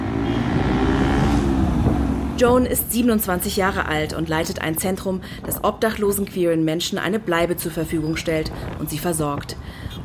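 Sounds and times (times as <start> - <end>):
boda boda motorcycle taxi engine droning in Kampala: 0.0 - 2.8
surrounding traffic: 0.0 - 10.0
speech: 2.4 - 10.0.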